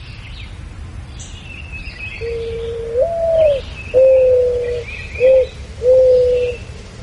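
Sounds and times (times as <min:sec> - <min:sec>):
mourning dove cooing: 0:02.2 - 0:06.7.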